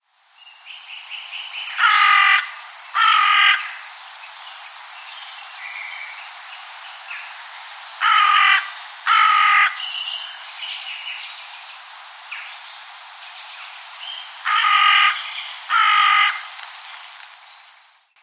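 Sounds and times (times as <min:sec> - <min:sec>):
carrion crow: 0:01.8 - 0:03.8, 0:08.0 - 0:09.8, 0:14.4 - 0:16.5.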